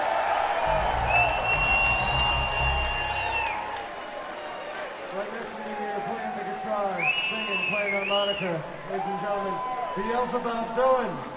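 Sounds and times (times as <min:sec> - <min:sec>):
audience applause: 0:00.0 - 0:08.0
audience cheering: 0:00.0 - 0:11.3
high whistle from the crowd: 0:00.6 - 0:04.0, 0:07.0 - 0:08.4
speech: 0:07.9 - 0:11.3.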